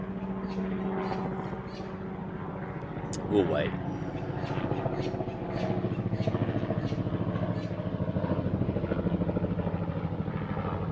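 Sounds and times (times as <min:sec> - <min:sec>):
helicopter flying overhead near an airport: 0:00.0 - 0:10.9
speech: 0:00.5 - 0:01.9, 0:03.3 - 0:06.4.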